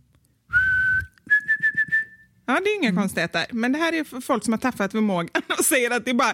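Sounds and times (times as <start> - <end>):
person whistling: 0.5 - 2.3
speech: 2.5 - 6.3.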